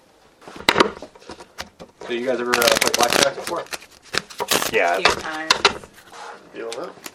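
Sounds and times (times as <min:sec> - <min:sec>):
playing cards shuffled and riffled before a blackjack game: 0:00.5 - 0:06.2
speech: 0:02.1 - 0:03.8, 0:04.7 - 0:05.9, 0:06.6 - 0:07.1.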